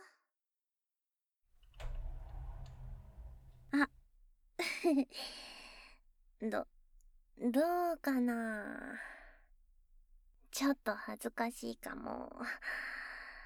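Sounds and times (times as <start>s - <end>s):
door sliding open with a low scraping: 1.6s - 4.0s
speech: 4.9s - 5.5s, 6.4s - 6.7s, 7.4s - 9.2s, 10.5s - 13.0s.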